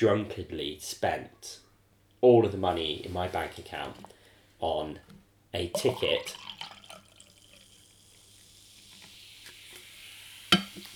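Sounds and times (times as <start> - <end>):
speech: 0.0 - 1.6, 2.2 - 6.7
drink being poured with fizzy splashing hiss: 5.7 - 10.9.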